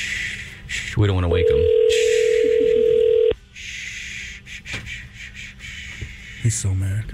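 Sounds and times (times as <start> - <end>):
speech: 1.0 - 2.0, 6.5 - 7.1
ringback tone from an outgoing phone call: 1.3 - 3.4.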